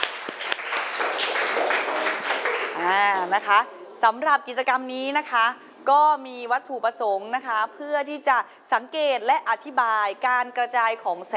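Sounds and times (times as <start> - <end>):
sharper individual claps: 0.0 - 3.3
classroom of people applauding for a student: 0.0 - 3.6
speech: 2.9 - 11.3.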